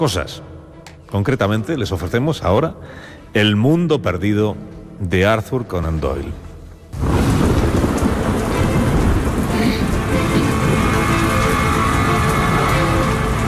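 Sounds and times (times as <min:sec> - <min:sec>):
speech: 0:00.0 - 0:00.5, 0:01.1 - 0:06.4
deep rumble of thunder: 0:07.0 - 0:13.4
heavy rain pouring: 0:07.0 - 0:13.4.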